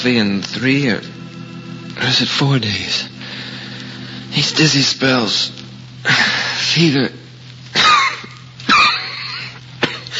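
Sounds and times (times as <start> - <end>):
speech: 0.0 - 1.2, 2.0 - 3.5, 4.3 - 7.2
person coughing: 9.8 - 10.1.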